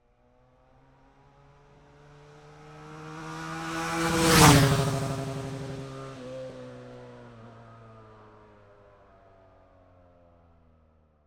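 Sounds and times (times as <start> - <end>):
2010 BMW F800R 798cc four-stroke motorcycle passing by fast accelerating: 2.2 - 7.6.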